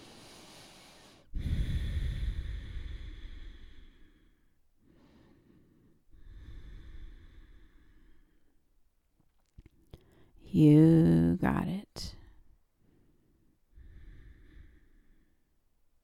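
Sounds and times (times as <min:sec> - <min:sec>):
heavy breathing during a yoga workout: 0:00.0 - 0:08.6, 0:12.2 - 0:15.5
speech: 0:10.5 - 0:12.1.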